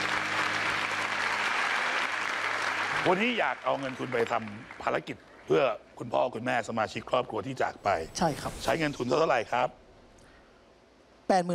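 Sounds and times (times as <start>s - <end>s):
audience applause: 0.0s - 5.6s
speech: 3.0s - 9.8s, 11.3s - 11.5s.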